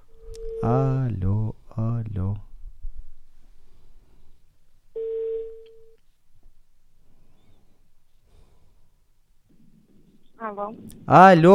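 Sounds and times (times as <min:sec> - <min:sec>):
quiet low noise: 0:00.0 - 0:11.5
speech: 0:00.6 - 0:01.5, 0:10.6 - 0:11.5
outgoing telephone call ringback tone: 0:05.0 - 0:06.0.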